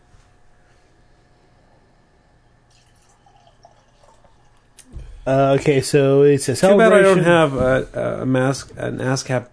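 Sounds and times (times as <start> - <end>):
small fizzy trickles: 2.7 - 4.8
straw-golden craft beer pouring into a glass: 2.7 - 4.8
speech: 5.3 - 9.5.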